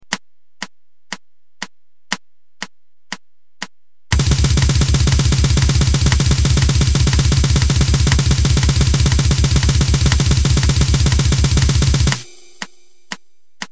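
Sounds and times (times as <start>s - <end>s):
blast: 4.1s - 12.6s.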